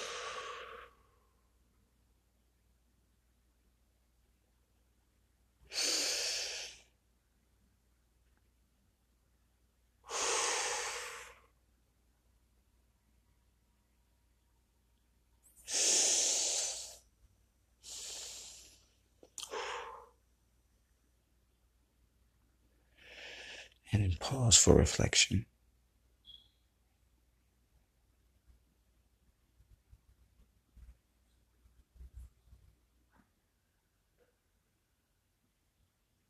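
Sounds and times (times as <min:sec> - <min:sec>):
deep breaths in and out during a guided breathing exercise: 0:00.0 - 0:01.5, 0:05.6 - 0:07.0, 0:10.0 - 0:11.6, 0:15.6 - 0:17.1, 0:17.8 - 0:20.2, 0:22.8 - 0:23.8
speech: 0:24.0 - 0:25.5.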